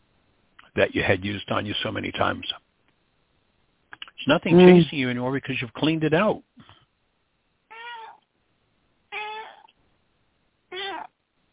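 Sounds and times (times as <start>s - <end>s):
speech: 0.8s - 2.6s, 4.2s - 6.7s
cat meowing: 7.7s - 8.2s, 9.1s - 9.7s, 10.7s - 11.2s.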